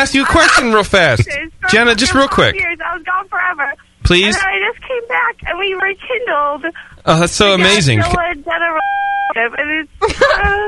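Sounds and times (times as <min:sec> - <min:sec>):
caller's voice over the phone: 0:00.0 - 0:10.6
steady electronic telephone-line beep: 0:08.8 - 0:09.4.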